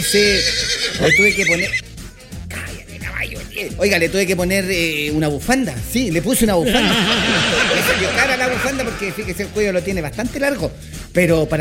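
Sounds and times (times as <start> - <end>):
horse neighing: 0.0 - 1.9, 6.7 - 9.4
speech: 0.1 - 1.9, 3.6 - 11.5
laughter: 6.4 - 9.8.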